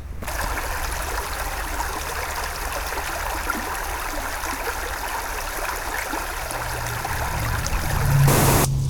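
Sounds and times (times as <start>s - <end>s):
babbling brook flowing: 0.2s - 8.7s.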